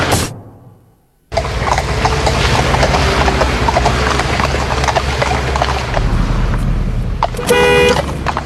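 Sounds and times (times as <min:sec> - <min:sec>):
car engine's low rumble: 0:00.0 - 0:08.4
horse hooves clip-clopping on the road: 0:01.3 - 0:08.4
car horn blast: 0:07.3 - 0:08.1.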